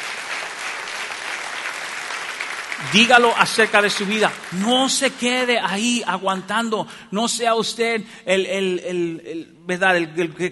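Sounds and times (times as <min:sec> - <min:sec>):
church congregation applauding during a sermon: 0:00.0 - 0:05.8
speech: 0:02.8 - 0:10.5.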